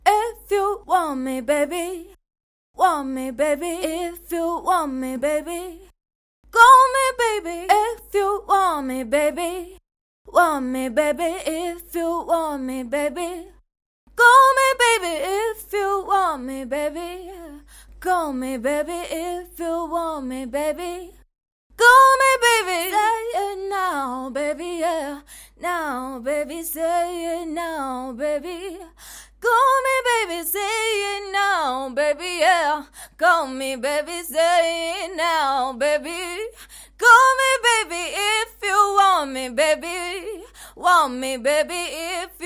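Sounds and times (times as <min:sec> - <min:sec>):
woman singing pop a cappella: 0:00.0 - 0:02.2, 0:02.8 - 0:42.4.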